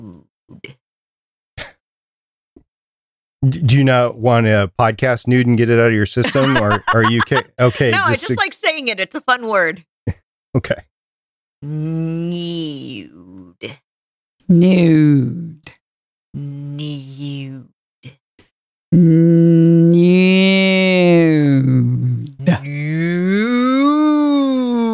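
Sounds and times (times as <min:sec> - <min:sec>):
speech: 0:03.4 - 0:10.9, 0:11.6 - 0:13.8, 0:14.5 - 0:15.8, 0:16.4 - 0:18.2, 0:18.9 - 0:19.9
laughter: 0:06.2 - 0:09.7
person imitating a cow mooing: 0:11.6 - 0:13.8, 0:14.5 - 0:15.6, 0:16.4 - 0:17.7, 0:18.9 - 0:24.9.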